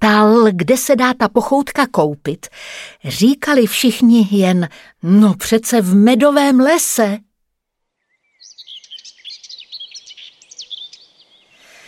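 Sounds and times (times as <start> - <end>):
speech: 0.0 - 7.3
birds chirping and twittering: 7.8 - 11.8.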